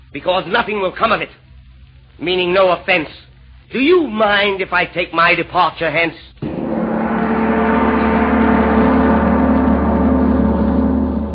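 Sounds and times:
speech: 0.1s - 1.4s, 2.2s - 6.3s
big brass gong ringing: 6.4s - 11.3s.

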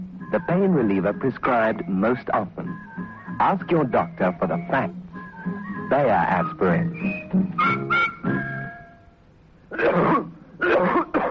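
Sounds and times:
speech: 0.3s - 5.0s, 5.9s - 8.1s
harsh rasping hacking cough: 9.7s - 11.3s.

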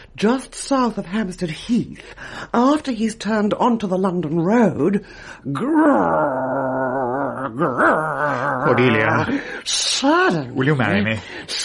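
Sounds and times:
speech: 0.2s - 11.6s
voice imitating a dog's whimpering whine: 5.6s - 9.4s.

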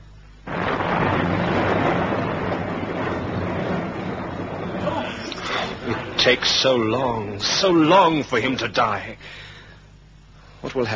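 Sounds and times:
thunderstorm with loud rolling roar and deep rumbling: 0.4s - 8.8s
speech: 6.3s - 9.4s, 10.6s - 10.9s.

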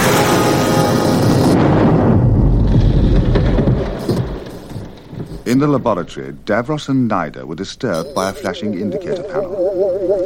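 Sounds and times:
huge explosion: 0.0s - 6.1s
speech: 5.6s - 10.2s.

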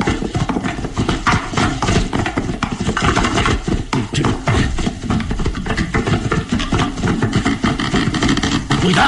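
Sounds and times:
horses galloping across a hollow wooden bridge: 0.0s - 9.0s.

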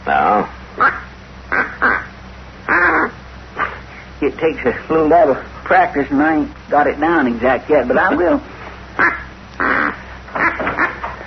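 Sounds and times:
speech: 0.1s - 0.9s, 4.2s - 9.1s
duck call quacking: 0.8s - 2.1s, 2.7s - 3.7s, 9.0s - 11.1s.

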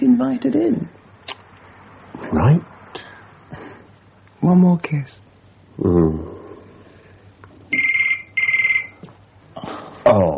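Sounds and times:
speech: 0.2s - 1.0s, 2.2s - 2.7s, 4.4s - 6.3s, 10.0s - 10.3s
telephone ringing with electronic trill: 7.7s - 9.0s.

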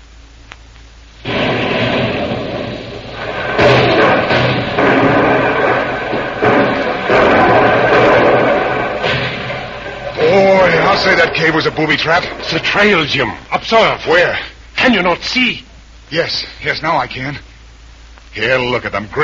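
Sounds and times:
continuous wash of noise: 0.0s - 19.2s
heavy rumbling blasts from a grenade thrown at a cave: 1.2s - 14.3s
speech: 11.0s - 17.5s, 18.3s - 19.2s.

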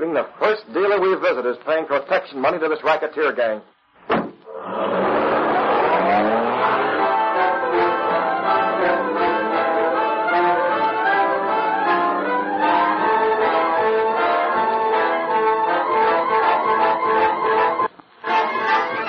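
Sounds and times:
speech: 0.0s - 5.0s
car roaring away: 4.4s - 17.0s
car tires squealing: 4.5s - 17.9s.

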